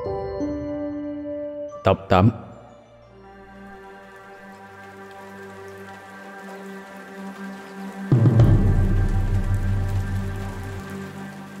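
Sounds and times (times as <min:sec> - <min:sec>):
speech: 0:01.8 - 0:02.4
rain pattering on a surface: 0:03.4 - 0:11.5.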